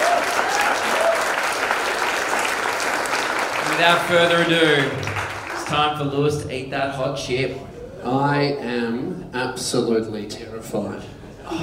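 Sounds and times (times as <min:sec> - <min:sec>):
audience applause: 0:00.0 - 0:06.2
speech: 0:03.8 - 0:05.1, 0:05.7 - 0:11.6.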